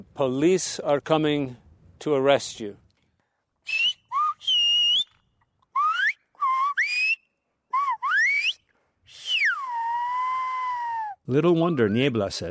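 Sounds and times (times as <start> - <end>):
speech: 0.2 - 2.8, 11.3 - 12.4
human whistler whistling phrases in the Silbo whistled language: 3.7 - 5.1, 5.7 - 12.0.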